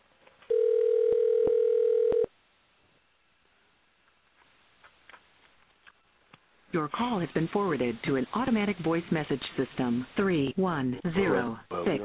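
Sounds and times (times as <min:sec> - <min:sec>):
telephone dial tone when dialing a call: 0:00.5 - 0:02.3
speech: 0:06.7 - 0:12.0.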